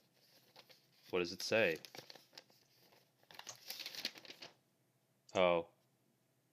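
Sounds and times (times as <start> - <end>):
paper calendar crinkling as it is unfolded: 0.0 - 4.6
speech: 1.1 - 2.1, 5.4 - 5.7.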